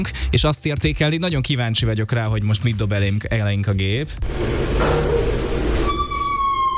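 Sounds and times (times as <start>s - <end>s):
speech: 0.0s - 5.3s
door creaking open with squealing hinge: 4.6s - 6.7s.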